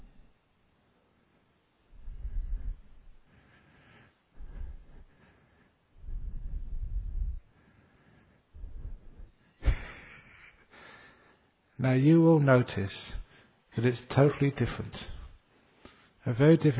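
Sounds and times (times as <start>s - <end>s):
person breathing into the microphone during a breath meditation: 1.9s - 11.6s
speech: 11.8s - 13.2s, 13.8s - 15.2s, 16.2s - 16.7s.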